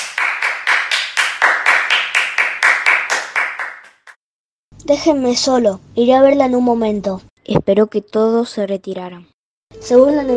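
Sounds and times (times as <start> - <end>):
sharp hand claps: 0.0 - 4.2
speech: 4.9 - 10.3.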